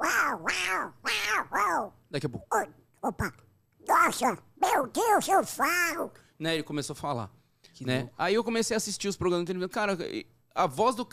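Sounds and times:
person's voice imitating a cat meowing: 0:00.0 - 0:06.2
speech: 0:00.3 - 0:11.1.

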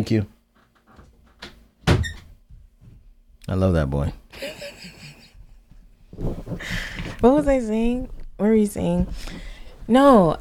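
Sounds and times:
speech: 0:00.0 - 0:00.3, 0:03.5 - 0:04.5, 0:06.2 - 0:10.3
door thudding shut: 0:01.4 - 0:02.3
laughter: 0:04.4 - 0:05.5
faint shuffle of movement: 0:05.4 - 0:10.3.

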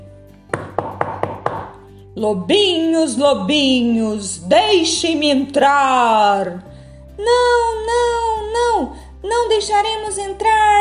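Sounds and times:
knocking on the door of a brick house: 0:00.5 - 0:01.8
speech: 0:02.2 - 0:10.7.

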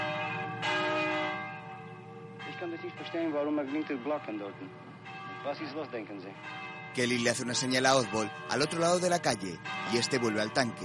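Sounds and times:
large bell ringing: 0:00.0 - 0:10.8
speech: 0:02.8 - 0:10.8.

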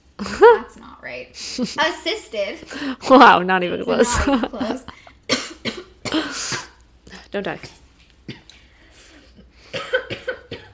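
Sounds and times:
speech: 0:00.4 - 0:05.0, 0:07.3 - 0:07.8
person coughing after inhaling saliva: 0:05.3 - 0:06.8, 0:09.7 - 0:10.7.

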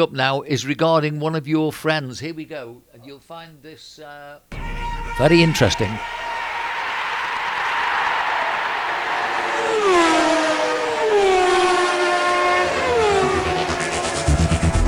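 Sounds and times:
speech: 0:00.0 - 0:06.2
car engine revving and accelerating through gear changes: 0:04.5 - 0:14.8
steady road roar: 0:04.5 - 0:14.8.

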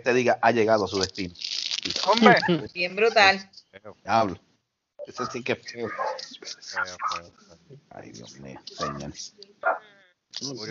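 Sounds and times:
speech: 0:00.0 - 0:10.6
laughter: 0:02.0 - 0:03.4, 0:05.1 - 0:07.3, 0:08.0 - 0:09.2
dog barking and whimpering: 0:05.2 - 0:07.3, 0:08.8 - 0:10.0.

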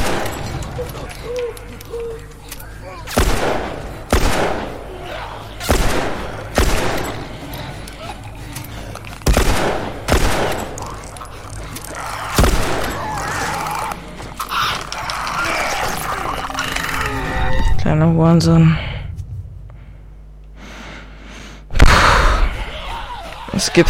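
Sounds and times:
video game gunshots: 0:00.0 - 0:00.5, 0:03.1 - 0:05.0, 0:05.6 - 0:07.4, 0:09.2 - 0:11.0, 0:12.3 - 0:13.2
low rumbling background: 0:00.0 - 0:23.8.

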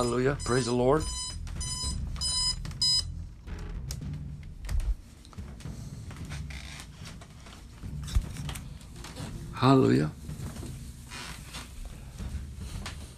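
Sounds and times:
speech: 0:00.0 - 0:01.2, 0:09.6 - 0:10.2
alarm clock beeping: 0:00.0 - 0:03.2
rustling, clicking and handling noises: 0:04.4 - 0:13.1.

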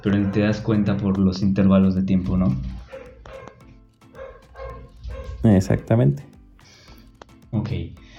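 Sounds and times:
dog barking: 0:00.0 - 0:00.9, 0:02.7 - 0:05.5
speech: 0:00.0 - 0:03.4, 0:05.4 - 0:06.3, 0:07.5 - 0:08.0.

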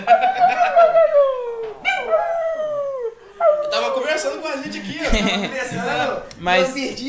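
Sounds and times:
laughter: 0:00.0 - 0:01.8, 0:03.5 - 0:06.3
dog howling and whining: 0:00.1 - 0:04.4
speech: 0:05.2 - 0:07.0.

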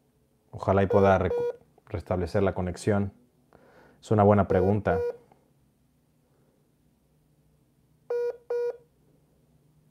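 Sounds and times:
low hum: 0:00.0 - 0:09.8
speech: 0:00.6 - 0:03.2, 0:04.0 - 0:05.2
telephone keypad dialing tones: 0:00.9 - 0:01.6, 0:04.5 - 0:05.2, 0:08.1 - 0:08.8.

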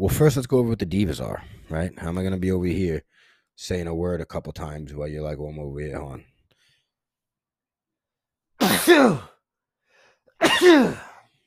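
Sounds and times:
speech: 0:00.0 - 0:06.3, 0:08.6 - 0:09.3, 0:10.4 - 0:11.1
person sneezing: 0:08.6 - 0:09.4, 0:10.4 - 0:11.2.

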